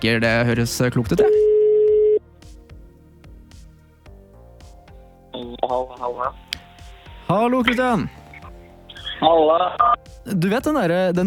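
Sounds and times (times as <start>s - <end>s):
speech: 0.0s - 1.6s, 5.6s - 6.4s, 7.3s - 8.2s, 9.2s - 11.2s
telephone ringing tone while placing a call: 1.2s - 2.2s.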